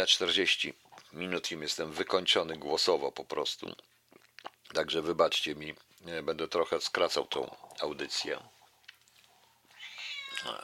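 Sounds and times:
speech: 0.0s - 3.9s, 4.7s - 8.6s, 10.4s - 10.6s
cat meowing loudly: 9.8s - 10.6s.

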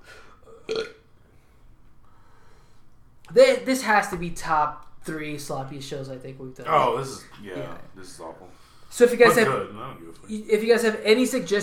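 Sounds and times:
low noise: 0.0s - 11.6s
person burping: 0.4s - 1.1s
speech: 3.3s - 11.6s.

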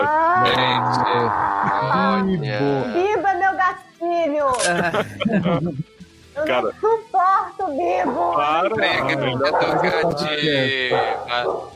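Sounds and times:
laughter: 0.0s - 2.4s, 4.5s - 6.0s, 8.4s - 10.9s
speech: 0.0s - 3.2s, 4.3s - 7.0s, 7.6s - 11.7s
dog barking and yipping: 9.0s - 11.7s.

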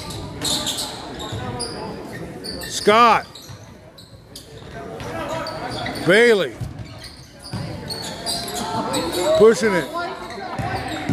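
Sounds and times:
crowd noise: 0.0s - 11.1s
indistinct chatter: 0.0s - 11.1s
speech: 2.8s - 3.3s, 6.1s - 6.6s, 9.0s - 10.1s
basketball dribbled on the court during a game: 6.6s - 7.8s.

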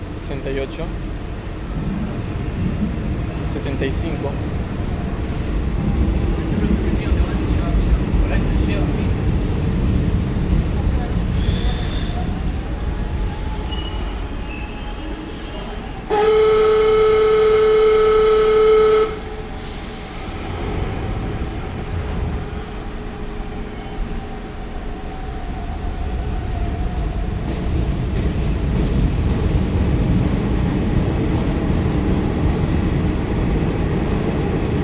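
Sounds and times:
metro train arriving at station: 0.0s - 34.8s
speech: 0.3s - 3.0s, 3.6s - 4.8s
faint squeals: 13.2s - 16.0s
steady tonal horn or whistle: 16.1s - 19.2s.

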